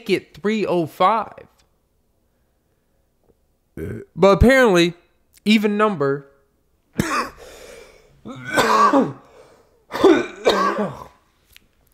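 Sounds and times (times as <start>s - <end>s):
speech: 0.0s - 1.5s, 3.8s - 6.3s, 8.2s - 9.2s
person clearing throat: 3.8s - 4.1s, 7.0s - 7.5s, 8.3s - 9.3s, 9.9s - 11.2s
person coughing: 7.0s - 11.2s.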